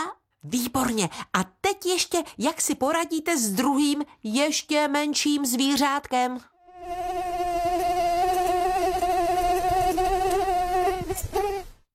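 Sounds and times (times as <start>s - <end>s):
speech: 0.4s - 7.3s
mosquito buzzing: 6.6s - 11.8s.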